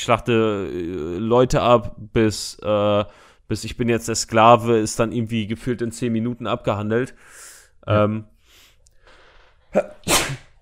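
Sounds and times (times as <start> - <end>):
speech: 0.0 - 8.3, 9.7 - 10.4
sneeze: 9.8 - 10.6.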